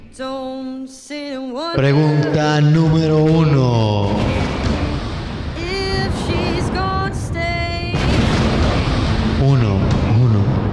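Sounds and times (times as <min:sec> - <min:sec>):
speech: 0:00.1 - 0:04.3
loud rumbling explosion sound effect: 0:02.6 - 0:10.7.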